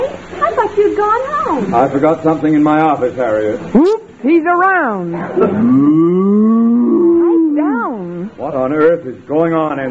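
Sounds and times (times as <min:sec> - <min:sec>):
speech: 0:00.8 - 0:06.8, 0:08.3 - 0:09.9
cow mooing while backed into a closet in an office: 0:05.5 - 0:07.4.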